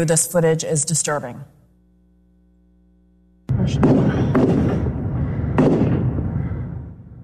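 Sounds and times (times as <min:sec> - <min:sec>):
speech: 0:00.0 - 0:01.6, 0:03.7 - 0:04.2
continuous loud rumbling noise: 0:03.5 - 0:07.2
gunshots from a large rifle during a shooting: 0:03.8 - 0:06.3.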